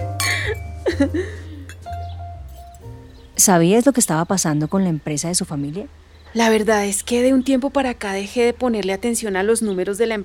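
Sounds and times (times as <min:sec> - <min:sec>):
glasses clinking during a toast: 0:00.0 - 0:00.9, 0:01.6 - 0:02.8
speech: 0:00.5 - 0:01.4, 0:03.4 - 0:10.2.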